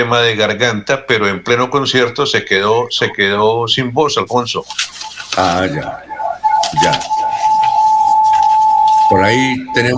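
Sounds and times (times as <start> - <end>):
speech: 0.0 - 6.1, 6.7 - 7.2, 9.1 - 9.9
faint scratchy noise: 4.2 - 9.9
audio feedback tone from high volume on caller's equipment: 4.3 - 9.9.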